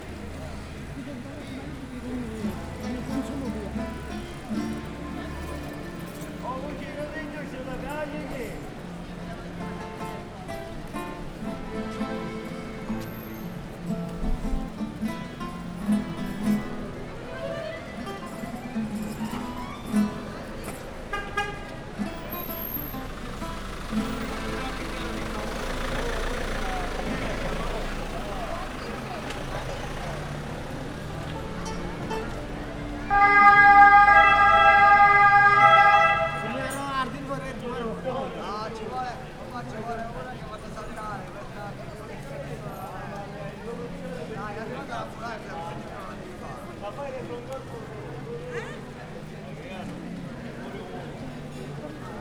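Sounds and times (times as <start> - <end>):
accordion playing: 10.8 - 16.6, 17.2 - 36.9
police car siren: 33.1 - 36.8.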